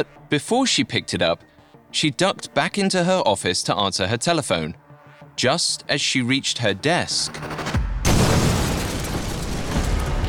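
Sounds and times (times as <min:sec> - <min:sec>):
speech: 0:00.0 - 0:07.7
explosion shaking a building: 0:07.8 - 0:10.2
shrapnel debris crackling: 0:08.1 - 0:10.2.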